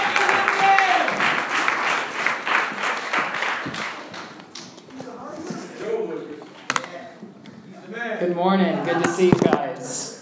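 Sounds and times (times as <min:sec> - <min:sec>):
room full of people applauding: 0:00.0 - 0:04.8
speech: 0:08.3 - 0:10.0.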